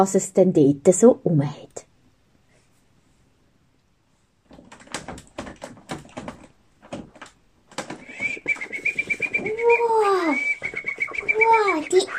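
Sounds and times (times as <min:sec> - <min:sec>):
speech: 0:00.0 - 0:01.8
sharp rustling and flapping: 0:04.4 - 0:12.1
birds calling in a forest with whistled sweeping tones: 0:07.9 - 0:12.1.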